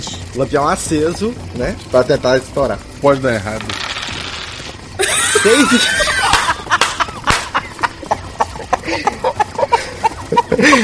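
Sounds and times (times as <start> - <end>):
speech: 0.0 - 4.0, 5.4 - 6.2, 10.6 - 10.8
laughter: 5.0 - 10.8
chicken clucks and squawks: 7.9 - 10.6.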